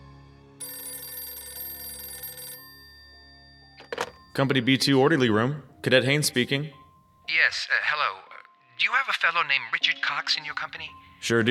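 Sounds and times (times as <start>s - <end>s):
telephone bell ringing in a cadet company orderly room: 0.6s - 4.9s
speech: 4.4s - 8.2s, 9.2s - 11.4s.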